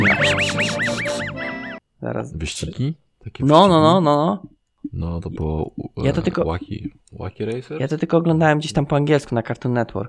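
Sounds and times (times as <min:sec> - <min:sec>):
voice imitating a cartoon dog's wheezy snickering laugh: 0:00.0 - 0:01.5
speech: 0:02.0 - 0:10.0.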